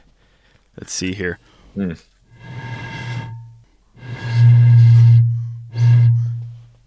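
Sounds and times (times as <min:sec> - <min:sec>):
speech: 0:00.8 - 0:02.1
person blowing across the mouth of a milk jug: 0:02.3 - 0:06.8.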